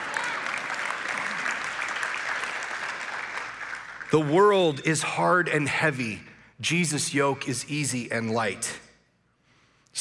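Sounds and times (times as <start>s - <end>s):
audience clapping: 0.0s - 4.8s
speech: 4.1s - 8.8s.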